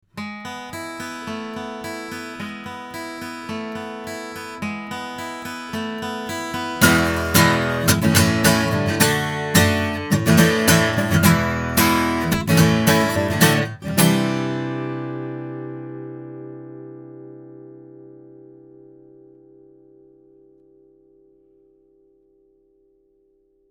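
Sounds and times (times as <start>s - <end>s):
guitar recorded with condenser microphone: 0.0s - 23.6s.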